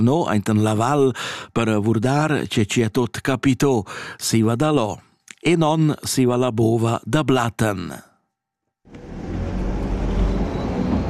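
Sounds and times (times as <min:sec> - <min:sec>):
speech: 0:00.0 - 0:08.1
postal bus engine rumble driving up a narrow mountain valley road: 0:08.9 - 0:11.0.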